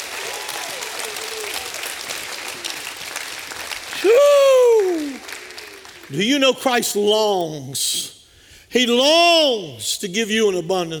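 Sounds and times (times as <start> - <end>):
crowd clapping: 0.0 - 6.5
speech: 6.1 - 10.9.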